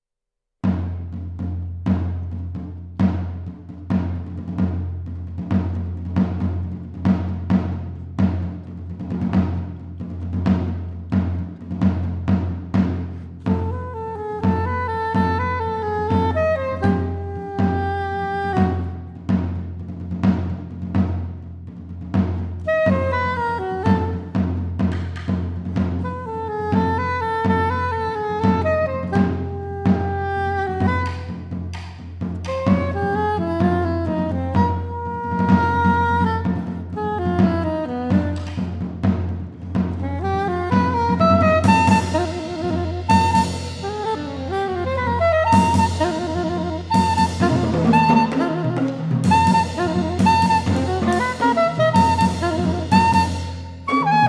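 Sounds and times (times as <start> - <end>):
percussion: 0.6 - 54.2
saxophone: 13.4 - 19.4, 22.6 - 24.9, 26.0 - 39.1, 40.0 - 54.2.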